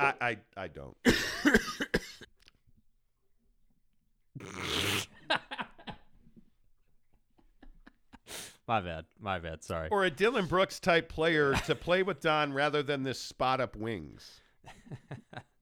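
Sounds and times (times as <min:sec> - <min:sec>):
speech: 0:00.1 - 0:02.2, 0:08.7 - 0:15.5
person having a harsh raspy coughing fit: 0:04.4 - 0:05.1
throat clearing sounds: 0:04.4 - 0:05.1.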